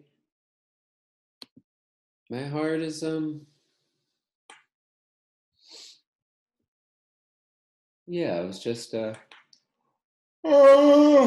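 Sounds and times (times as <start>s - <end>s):
speech: 2.3s - 3.5s, 8.1s - 9.3s, 10.4s - 11.2s
human yawn: 10.5s - 11.2s.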